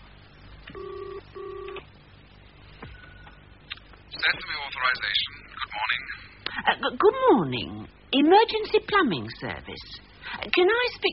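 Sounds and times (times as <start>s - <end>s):
telephone ringing tone heard down the line: 0.7s - 1.8s
click as the call connects: 0.7s - 1.9s
speech: 4.2s - 11.1s.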